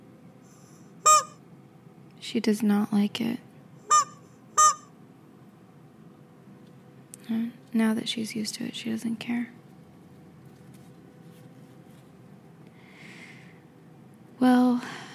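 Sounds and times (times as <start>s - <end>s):
squeezed rubber toy chicken squawking: 1.0s - 1.4s, 3.9s - 4.9s
speech: 2.2s - 3.5s, 7.8s - 9.6s.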